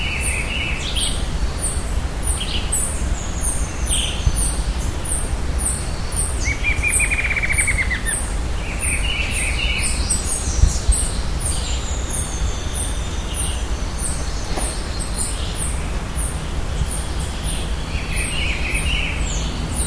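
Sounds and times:
birds giving high chirps and twitters: 0:00.0 - 0:19.8
constant low rumbling noise: 0:00.0 - 0:19.8.

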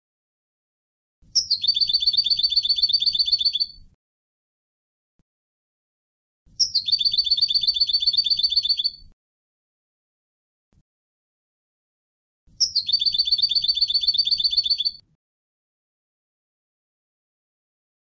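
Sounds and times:
European goldfinch trilling: 0:01.4 - 0:03.8, 0:06.6 - 0:09.0, 0:12.6 - 0:15.0.

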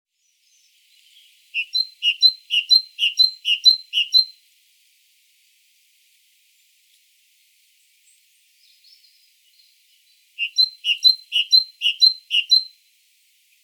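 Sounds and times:
Great tit Parus major calling: 0:01.6 - 0:04.3, 0:10.4 - 0:12.7.

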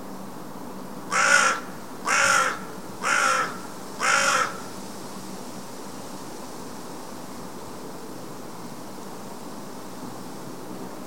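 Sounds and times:
background hiss: 0:00.0 - 0:11.0
carrion crow Corvus corone cawing: 0:01.1 - 0:04.7.

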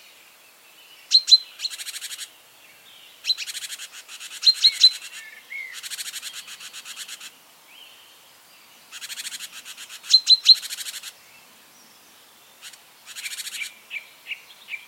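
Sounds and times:
great tit Parus major calling: 0:01.0 - 0:02.3, 0:03.1 - 0:07.4, 0:08.0 - 0:11.3, 0:11.9 - 0:14.8.

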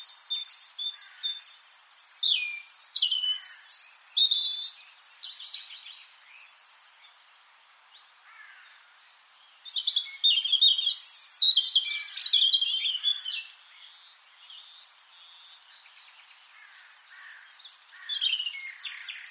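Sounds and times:
European robin Erithacus rubecula singing: 0:00.0 - 0:19.2.

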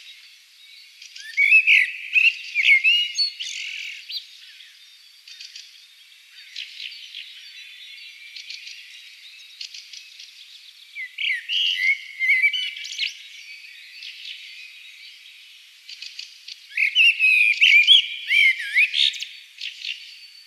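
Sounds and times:
common blackbird Turdus merula song: 0:00.0 - 0:20.4.

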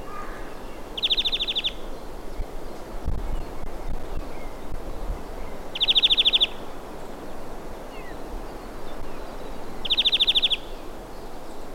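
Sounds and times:
steady background hiss: 0:00.0 - 0:11.7
European greenfinch trill: 0:00.1 - 0:01.9, 0:05.7 - 0:06.6, 0:09.1 - 0:10.8.

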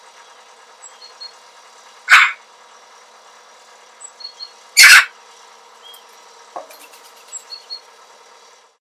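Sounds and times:
Eurasian magpie Pica pica giving grating calls: 0:02.1 - 0:02.4, 0:04.4 - 0:05.1.

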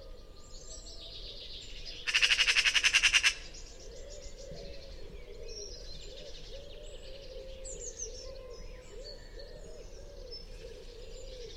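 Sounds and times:
Eurasian magpie Pica pica giving a harsh rattling chatter: 0:02.1 - 0:03.4.

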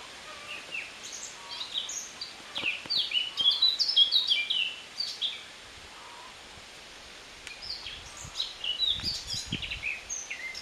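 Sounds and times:
Eurasian blackcap Sylvia atricapilla warbling song: 0:00.5 - 0:05.5, 0:07.5 - 0:10.5.

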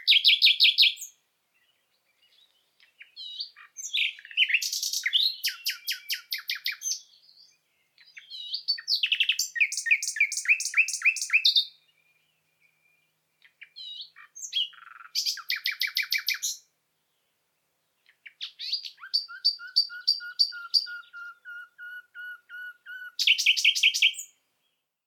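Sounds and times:
common nightingale Luscinia megarhynchos singing: 0:00.0 - 0:24.9.

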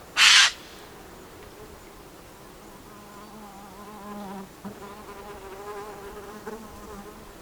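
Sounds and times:
Eurasian jay Garrulus glandarius giving a harsh rasping screech: 0:00.2 - 0:00.8
insect-like buzzing: 0:00.2 - 0:07.2.

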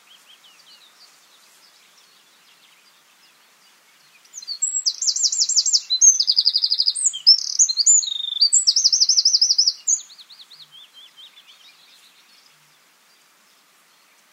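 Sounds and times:
Troglodytes troglodytes Eurasian wren song: 0:00.0 - 0:14.3.

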